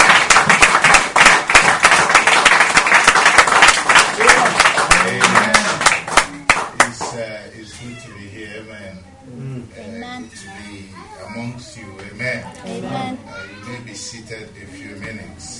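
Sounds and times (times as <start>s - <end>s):
crowd clapping: 0.0s - 7.2s
speech: 14.0s - 15.5s.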